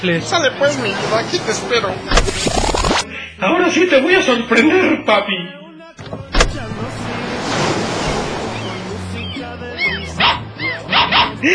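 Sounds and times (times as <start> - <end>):
speech: 0.0 - 6.3, 11.4 - 11.5
steady rushing wash: 6.6 - 9.1
dog barking: 10.1 - 11.4.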